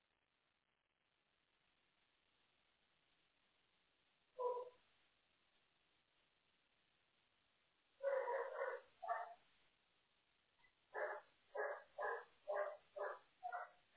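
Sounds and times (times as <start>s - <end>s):
dog barking: 4.4s - 4.8s, 8.0s - 9.4s, 10.9s - 13.9s.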